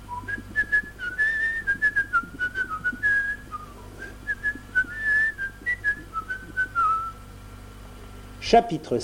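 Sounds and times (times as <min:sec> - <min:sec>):
faint low hum: 0:00.0 - 0:09.0
person whistling a short lilting melody: 0:00.1 - 0:07.2
speech: 0:08.5 - 0:09.0.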